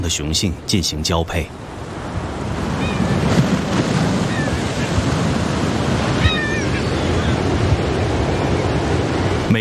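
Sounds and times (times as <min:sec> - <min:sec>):
gusting sea wind: 0:00.0 - 0:09.6
sea waves washing against an island shore: 0:00.0 - 0:09.6
speech: 0:00.1 - 0:01.8.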